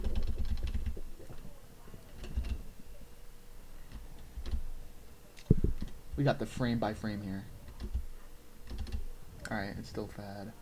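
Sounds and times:
computer keyboard keys clicking: 0.0 - 1.0, 2.2 - 2.6, 7.7 - 8.0, 8.7 - 9.1
speech: 6.2 - 7.6, 9.5 - 10.6.

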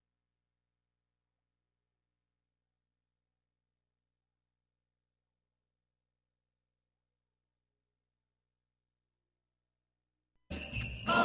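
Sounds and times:
sleigh bells ringing: 10.5 - 11.2.

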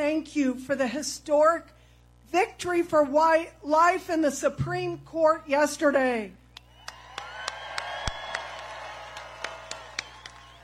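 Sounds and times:
speech: 0.2 - 6.4
crowd cheering at a political rally: 6.6 - 10.6
people clapping: 6.6 - 10.6.

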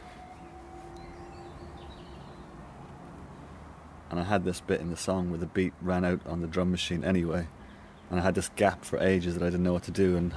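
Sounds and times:
faint sustained tone: 0.0 - 3.6
train rumbling past: 0.0 - 5.4
birds chirping lightly: 0.0 - 10.3
speech: 4.1 - 10.3.

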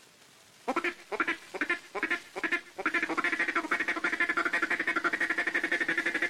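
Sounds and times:
duck call blown in a mating call pattern: 0.7 - 6.2.

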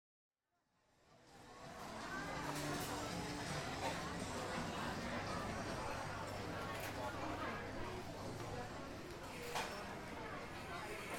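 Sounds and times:
city noise in Bangkok: 1.1 - 11.0.

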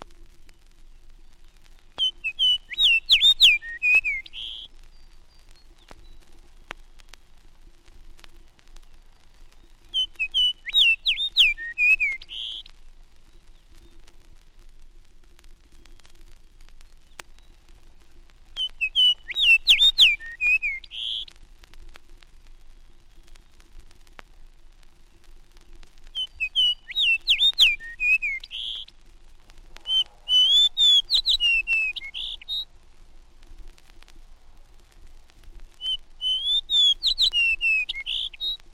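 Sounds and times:
fox sparrow singing near Hudson Bay: 1.9 - 6.3, 9.5 - 12.7, 18.6 - 21.3, 26.1 - 28.9, 29.8 - 32.6, 35.8 - 38.6.

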